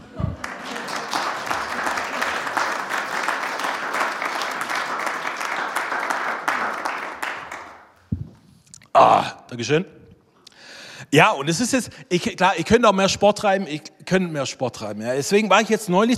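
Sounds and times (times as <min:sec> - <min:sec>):
audience applauding: 0:00.3 - 0:08.0
speech: 0:09.0 - 0:10.0, 0:11.1 - 0:16.1.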